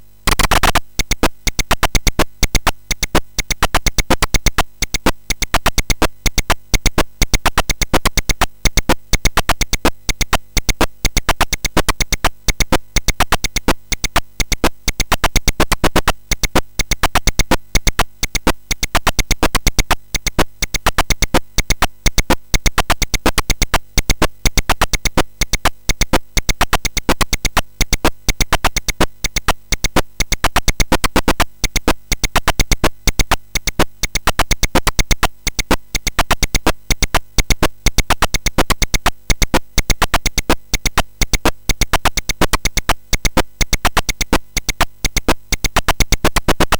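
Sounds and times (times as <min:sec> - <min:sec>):
SID MOS6581R4 sound chip mixes: 0:00.3 - 0:46.7.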